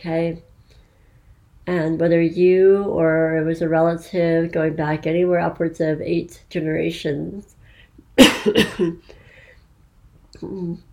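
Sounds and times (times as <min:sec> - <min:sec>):
speech: 0:00.0 - 0:00.5, 0:01.6 - 0:07.6, 0:08.2 - 0:09.2, 0:10.4 - 0:10.9
adult coughing harshly: 0:08.2 - 0:09.0.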